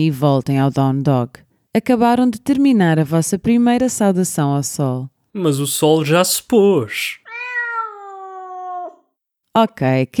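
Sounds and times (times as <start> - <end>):
speech: 0.0 - 7.2, 9.6 - 10.1
cat meowing: 6.8 - 9.1.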